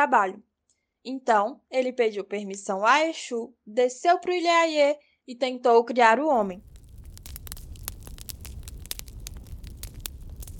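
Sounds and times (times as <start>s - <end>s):
speech: 0.0s - 6.7s
fire crackling with pops and snaps: 6.3s - 10.5s
low soft rumble: 6.5s - 10.5s.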